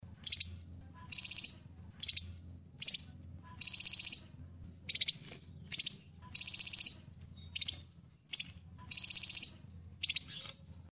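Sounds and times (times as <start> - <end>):
Kolibri Sepah Raja bird sounds: 0.1 - 10.8.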